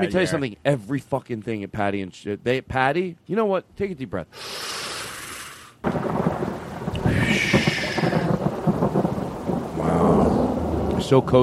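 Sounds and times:
speech: 0.0 - 4.9, 11.1 - 11.4
heavy rain outside: 5.8 - 11.4
thunder rumbling outside: 5.8 - 11.4.

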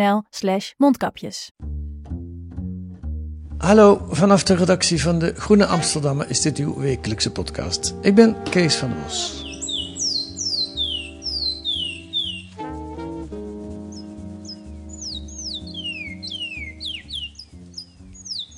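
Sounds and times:
speech: 0.0 - 1.8, 3.6 - 9.5
steady low tonal hum: 3.5 - 18.2
Surinamese songbird singing whistled chirps: 5.5 - 18.5.

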